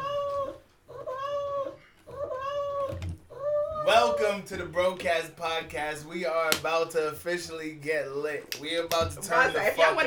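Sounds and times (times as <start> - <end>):
cat meowing loudly: 0.0 - 4.0
speech: 3.9 - 10.0
laughter: 9.2 - 10.0.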